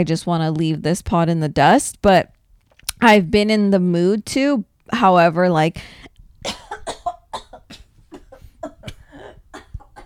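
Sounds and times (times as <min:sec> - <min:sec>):
speech: 0:00.0 - 0:02.3, 0:03.0 - 0:06.6
person coughing after inhaling saliva: 0:06.4 - 0:10.0.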